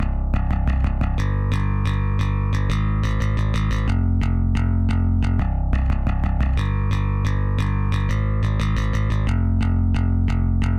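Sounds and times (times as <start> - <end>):
bass: 0.0 - 10.7
drums: 0.0 - 10.7.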